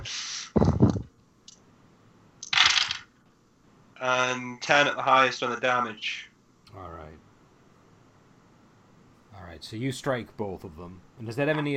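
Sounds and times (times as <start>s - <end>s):
dice clattering and rolling across a hard surface in a tabletop game: 2.4s - 3.1s
speech: 4.0s - 7.2s, 9.4s - 11.7s.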